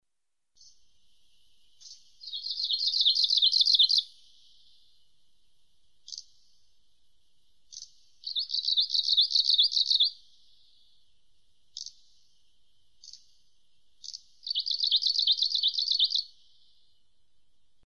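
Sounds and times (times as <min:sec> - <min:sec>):
Arctic warbler singing: 0:00.6 - 0:05.1, 0:06.0 - 0:06.7, 0:07.7 - 0:11.1, 0:11.7 - 0:17.0.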